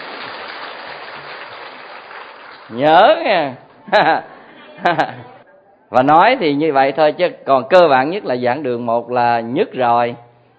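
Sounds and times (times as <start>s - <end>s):
audience applause in a lecture hall: 0.0s - 2.8s
speech: 2.7s - 10.2s
laughter: 3.8s - 5.4s.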